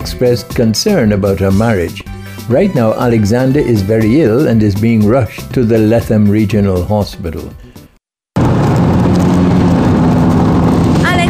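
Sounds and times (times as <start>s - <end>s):
speech: 0.1s - 7.6s
bus engine roar while driving: 8.4s - 11.2s.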